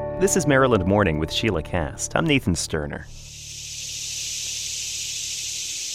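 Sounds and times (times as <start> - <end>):
speech: 0.2 - 3.3
loud chorus of cicadas buzzing: 3.1 - 5.9.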